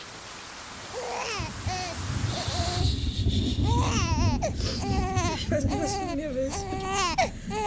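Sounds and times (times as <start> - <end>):
newborn baby crying at night: 0.9 - 2.8, 3.6 - 7.6
steady low rumble of noise: 1.4 - 7.6
speech: 4.5 - 7.6.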